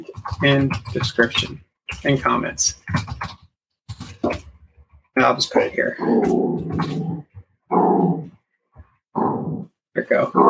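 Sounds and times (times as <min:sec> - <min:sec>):
speech: 0:00.0 - 0:03.4, 0:05.2 - 0:08.3, 0:09.2 - 0:10.4
female dog grunting softly: 0:05.6 - 0:08.4, 0:09.2 - 0:10.4.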